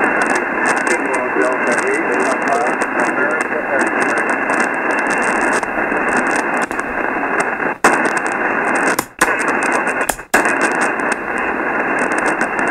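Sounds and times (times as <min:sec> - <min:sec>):
ham radio static with sharp crackling bursts: 0:00.0 - 0:12.6
faint weak voice signal on ham radio: 0:00.9 - 0:04.4.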